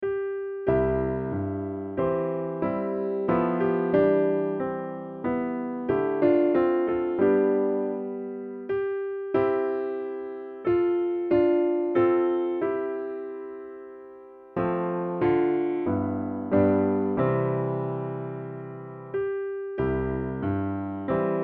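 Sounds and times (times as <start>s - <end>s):
low piano chord in C: 0.0s - 21.4s.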